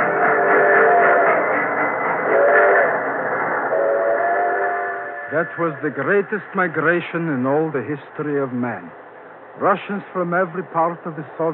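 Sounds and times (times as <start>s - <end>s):
freight train whistle: 0.0s - 1.4s, 2.2s - 3.1s, 3.7s - 5.8s
heavily laden freight train rumbling along rails: 0.0s - 11.5s
speech: 5.4s - 9.0s, 9.6s - 11.5s.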